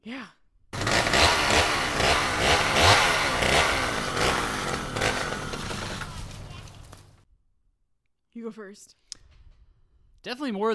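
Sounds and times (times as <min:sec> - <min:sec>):
speech: 0:00.0 - 0:00.4, 0:08.5 - 0:09.1, 0:10.2 - 0:10.7
chainsaw revving: 0:00.8 - 0:07.2.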